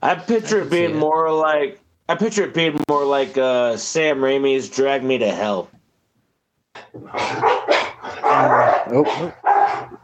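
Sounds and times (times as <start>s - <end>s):
speech: 0.0s - 5.8s, 6.8s - 10.0s
several dogs barking: 7.0s - 10.0s.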